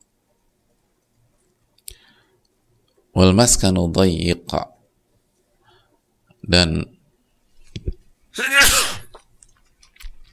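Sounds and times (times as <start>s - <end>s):
faint breaths: 1.8s - 2.6s, 5.4s - 6.2s
speech: 3.2s - 4.7s, 6.5s - 7.0s, 8.4s - 8.7s
person sneezing: 8.4s - 9.2s.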